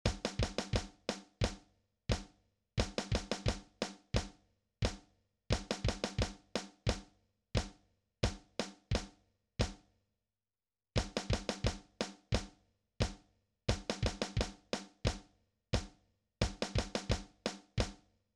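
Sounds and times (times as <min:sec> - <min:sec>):
drums warm-up: 0:00.1 - 0:07.0, 0:11.0 - 0:15.2, 0:15.8 - 0:17.9.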